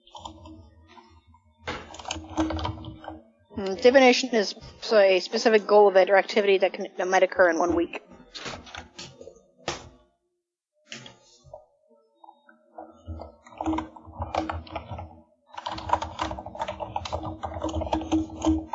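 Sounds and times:
typing on a computer keyboard: 0:01.8 - 0:03.1, 0:13.1 - 0:18.7
speech: 0:03.6 - 0:08.1.

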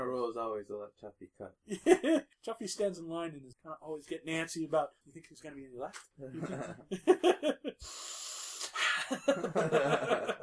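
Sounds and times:
speech: 0:00.3 - 0:08.2, 0:09.0 - 0:10.4
laughter: 0:01.7 - 0:02.3, 0:06.4 - 0:07.8, 0:08.9 - 0:10.4
voice imitating a character's wheezy snorting breathing: 0:07.8 - 0:09.1.

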